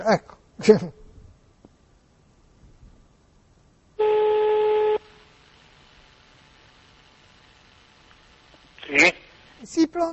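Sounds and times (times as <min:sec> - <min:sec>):
speech: 0:00.0 - 0:01.0, 0:09.7 - 0:10.1
steady telephone tone as a number is dialed: 0:04.0 - 0:08.9.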